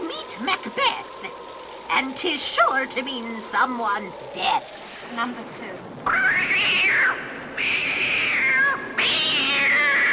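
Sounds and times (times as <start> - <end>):
speech: 0.4 - 1.1, 1.9 - 8.2
cat meowing: 6.1 - 10.1.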